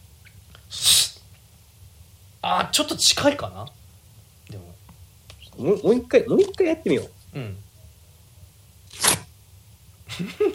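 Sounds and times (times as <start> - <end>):
speech: 2.5 - 3.8, 5.6 - 7.6, 10.2 - 10.5
two stacked sheets of thin paper ripping: 8.9 - 9.3
laughter: 10.1 - 10.5.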